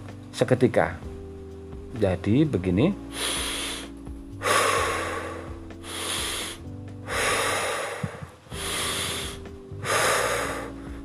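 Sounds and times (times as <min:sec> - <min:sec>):
speech: 0:00.4 - 0:01.1, 0:02.0 - 0:03.3
deep inhales through the nose in a breathing exercise: 0:03.0 - 0:11.0
exhales through the mouth in a breathing exercise: 0:03.0 - 0:11.0.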